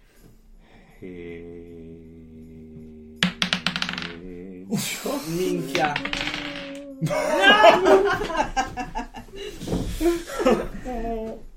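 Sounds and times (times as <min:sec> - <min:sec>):
speech: 0:01.0 - 0:01.5, 0:04.7 - 0:11.5
dice clattering onto a hard table: 0:03.2 - 0:04.2, 0:05.6 - 0:06.8
laughter: 0:06.8 - 0:11.4.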